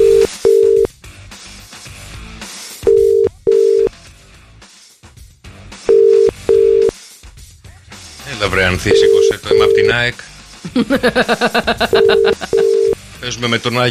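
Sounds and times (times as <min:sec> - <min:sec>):
telephone call dialled on a morning radio show: 0:00.0 - 0:00.9, 0:02.9 - 0:03.9, 0:05.9 - 0:06.9, 0:08.9 - 0:10.0, 0:12.0 - 0:13.0
speech: 0:08.5 - 0:12.5, 0:13.2 - 0:13.8
laughter: 0:10.6 - 0:12.9.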